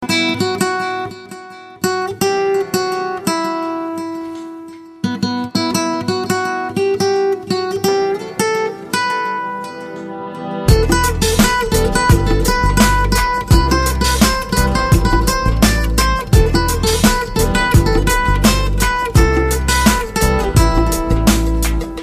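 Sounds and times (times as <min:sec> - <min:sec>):
romantic guitar music: 0:00.0 - 0:22.0.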